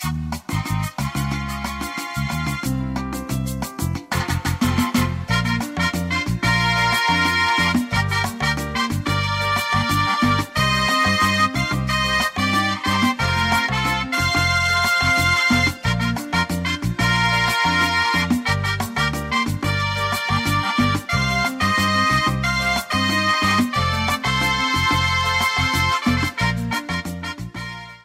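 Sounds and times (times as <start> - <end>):
salsa music: 0.0 - 28.0.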